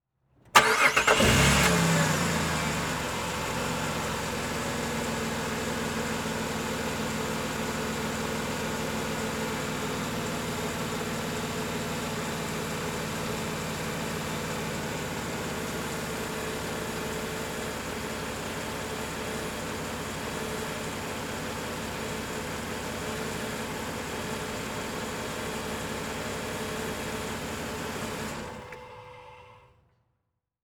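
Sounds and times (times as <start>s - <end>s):
Jeep Commander engine starting, idling and switching off, exterior: 0.3s - 30.0s.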